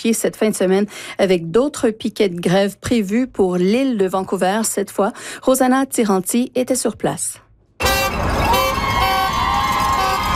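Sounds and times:
speech: 0:00.0 - 0:07.4
car horns honking in support at a hospital strike picket in Surrey: 0:07.8 - 0:10.3
crowd noise at a strike picket: 0:07.8 - 0:10.3
outdoor traffic noise: 0:07.8 - 0:10.3.

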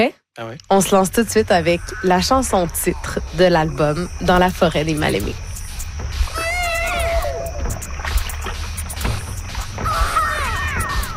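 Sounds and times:
speech: 0:00.0 - 0:05.5
baby's cry from a sound-effects vinyl record scratched back and forth: 0:06.2 - 0:07.7, 0:09.8 - 0:11.1.

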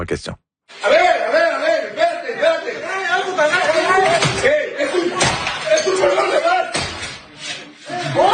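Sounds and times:
speech: 0:00.0 - 0:01.1
agitated voices talking and shouting: 0:00.7 - 0:08.3
door being forced with heavy thuds and slams: 0:05.2 - 0:07.2.

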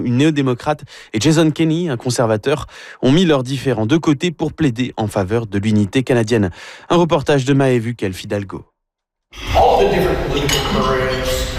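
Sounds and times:
speech: 0:00.0 - 0:08.7, 0:09.3 - 0:11.0
cutlery clattering on plates at a busy lunch: 0:10.3 - 0:11.5.

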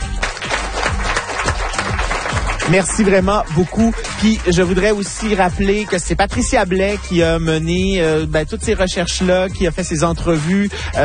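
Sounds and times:
audience applauding: 0:00.0 - 0:06.0
speech: 0:02.7 - 0:11.0.

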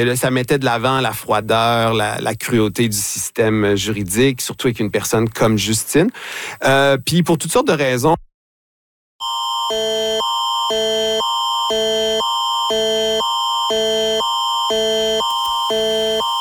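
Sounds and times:
speech: 0:00.0 - 0:08.3
national emergency alert system test tone: 0:09.2 - 0:16.3.

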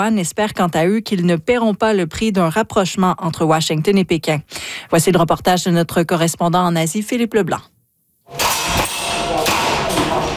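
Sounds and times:
speech: 0:00.0 - 0:08.5
compressed-air guns firing at indoor shooting practice in a basement: 0:08.3 - 0:10.3.

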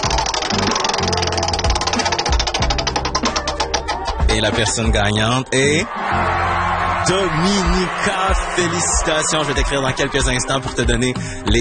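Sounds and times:
prize wheel spinning during a concert-ticket giveaway: 0:00.0 - 0:04.2
speech: 0:04.4 - 0:11.5.

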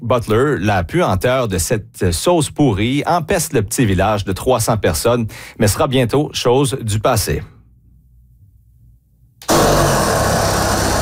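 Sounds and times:
speech: 0:00.1 - 0:07.5
saw cutting into a huge white tank of fermenting sauce: 0:09.4 - 0:10.9.

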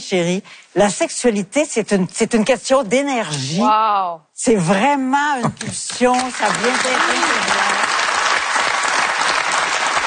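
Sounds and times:
speech: 0:00.0 - 0:07.8
audience applause: 0:06.1 - 0:10.0.

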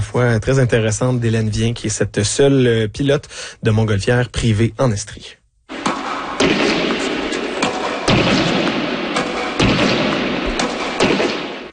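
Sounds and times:
steady hiss: 0:00.0 - 0:11.7
speech: 0:00.1 - 0:05.8
tennis racket of an 88-year-old player striking a ball: 0:05.7 - 0:11.7.

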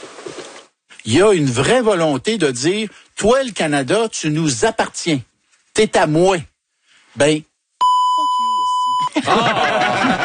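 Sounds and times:
speech: 0:01.1 - 0:06.5, 0:07.2 - 0:07.5, 0:09.2 - 0:09.9
censor bleep over a swear word: 0:07.8 - 0:09.2
laughter: 0:09.0 - 0:10.2.

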